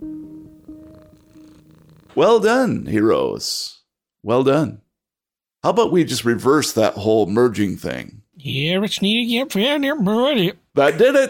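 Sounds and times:
cats purring as they rub against ankles: 0.0s - 2.4s
speech: 2.2s - 4.8s, 5.6s - 11.2s.

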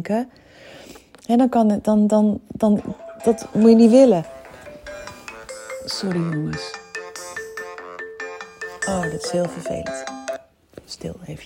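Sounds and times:
speech: 0.0s - 4.4s, 5.9s - 6.8s, 8.9s - 10.2s, 10.9s - 11.4s
phone ringtone with quick bright melodic pattern: 2.8s - 10.5s.

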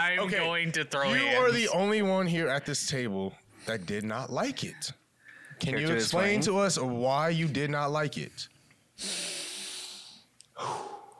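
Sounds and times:
speech: 0.0s - 5.0s, 5.6s - 9.3s
heavy controlled breathing: 5.2s - 5.6s, 8.5s - 11.1s.

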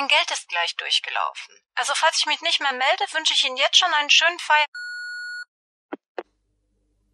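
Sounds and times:
speech: 0.0s - 4.8s
electronic telephone tone from a public phone booth: 4.8s - 5.4s.

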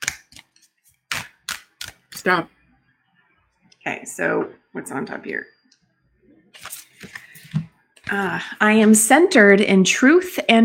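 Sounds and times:
deck of self-love cards being shuffled: 0.0s - 2.4s, 6.6s - 8.2s
speech: 2.2s - 2.6s, 3.8s - 5.6s, 8.1s - 10.6s.

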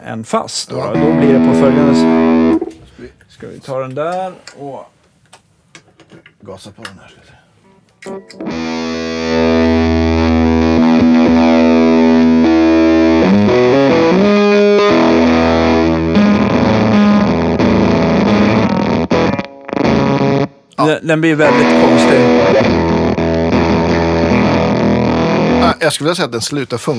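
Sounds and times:
speech: 0.0s - 5.0s, 6.4s - 7.4s, 8.0s - 9.4s, 20.8s - 22.7s, 25.8s - 26.9s
electric guitar played through a booster into a fuzz pedal: 0.9s - 2.7s, 8.1s - 25.8s.

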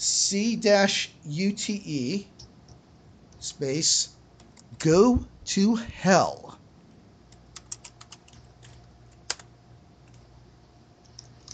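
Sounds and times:
speech: 0.0s - 2.4s, 3.5s - 4.2s, 4.8s - 6.6s
low steady hum: 0.0s - 11.5s
typing on a computer keyboard: 7.3s - 10.2s.

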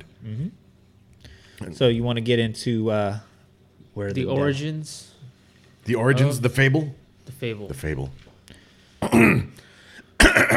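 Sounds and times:
speech: 0.3s - 0.6s, 1.6s - 3.3s, 4.0s - 5.1s, 5.9s - 8.3s, 9.1s - 9.4s
man clearing throat: 9.0s - 10.5s.

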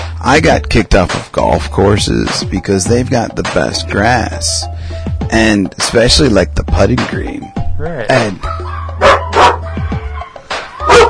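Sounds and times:
speech: 0.2s - 9.2s
dogs barking on a neighbouring farm: 8.4s - 11.0s.

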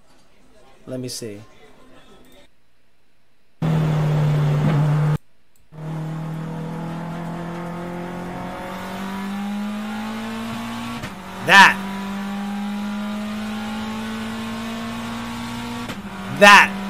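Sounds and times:
speech: 0.9s - 1.6s, 16.4s - 16.7s
rally car with dog box gearbox engine droning: 3.6s - 16.8s.

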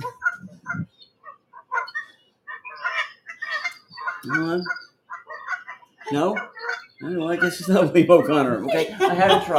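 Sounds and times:
flock of Canada geese honking: 0.0s - 9.5s
speech: 4.2s - 4.8s, 6.1s - 9.5s
laughter: 7.3s - 9.5s.

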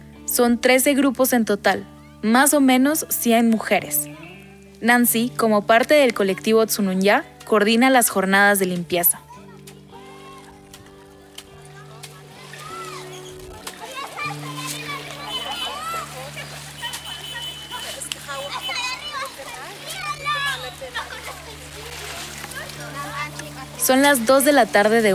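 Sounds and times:
speech: 0.3s - 4.2s, 4.8s - 9.2s, 23.9s - 25.1s
water splashing on a lake beach: 2.6s - 25.1s
children shouting and chattering on a lake beach during a beach cleanup: 9.2s - 24.2s.

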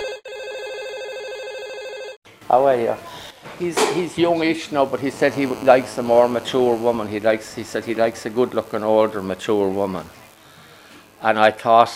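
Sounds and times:
telephone ringing with a rapid warbling electronic trill: 0.0s - 2.2s
speech: 2.5s - 10.2s, 11.2s - 11.9s.

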